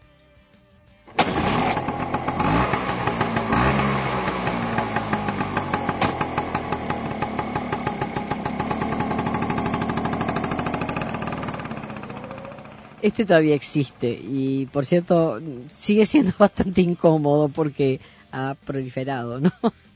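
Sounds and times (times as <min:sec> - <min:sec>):
Vespa scooter engine running: 0:01.2 - 0:16.8
speech: 0:13.0 - 0:19.8.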